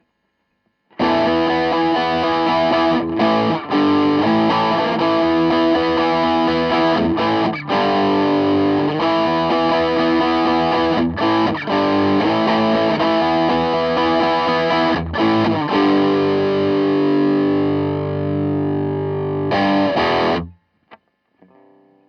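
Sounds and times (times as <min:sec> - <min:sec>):
crunch guitar tone through Ampeg GVT52-212 guitar amplifier: 0:00.9 - 0:22.0.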